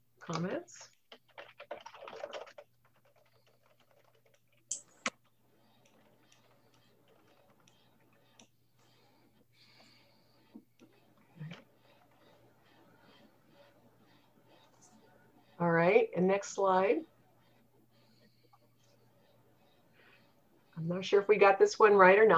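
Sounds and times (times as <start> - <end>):
speech: 0.3 - 1.0, 16.1 - 17.1, 20.8 - 22.3
typing on a computer keyboard: 0.3 - 9.0.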